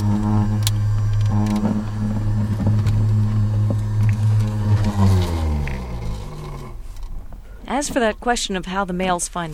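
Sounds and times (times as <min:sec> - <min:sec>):
portable centrifuge motor humming inside a truck: 0:00.0 - 0:07.6
speech: 0:07.8 - 0:09.5.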